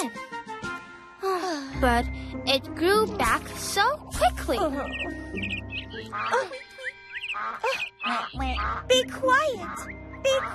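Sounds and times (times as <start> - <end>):
speech: 1.8 - 6.7, 7.4 - 10.5
high chirping birdsong: 2.1 - 10.5
ducks quacking: 4.6 - 10.5.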